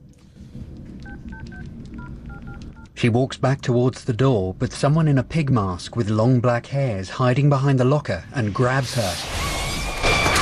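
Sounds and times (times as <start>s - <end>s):
mobile phone keypad tones in a locker room: 1.0s - 2.9s
speech: 1.4s - 9.4s.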